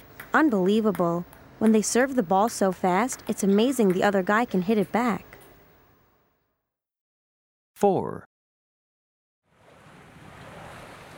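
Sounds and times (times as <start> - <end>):
speech: 0.3 - 5.3, 7.8 - 8.3
American and British boats racing through water with churning spray: 9.6 - 11.1.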